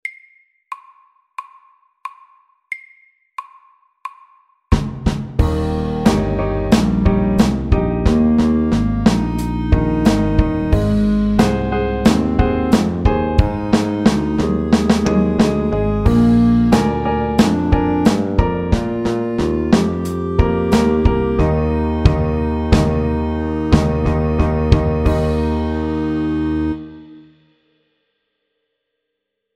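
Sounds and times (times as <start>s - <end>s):
slow clarinet blues: 5.4s - 27.2s.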